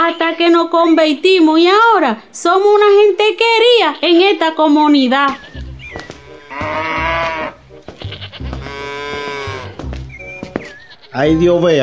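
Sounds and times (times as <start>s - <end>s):
speech: 0.6s - 5.5s, 6.6s - 7.6s, 11.1s - 11.8s
faint farmyard noise: 5.2s - 11.8s
cow lowing after kicking over the milk pail: 5.4s - 11.2s.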